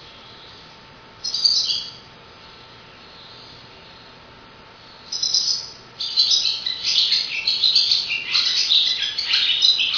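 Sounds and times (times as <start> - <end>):
faint steady hum: 0.0 - 9.9
swallow twittering: 0.2 - 4.2, 4.8 - 9.9.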